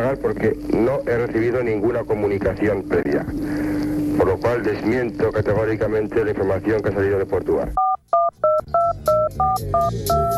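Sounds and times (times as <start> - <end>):
low murky noise: 0.0 - 7.8
speech: 0.1 - 7.8, 9.6 - 10.3
touch-tone keypad beeps as a telephone number is dialed: 7.8 - 10.3.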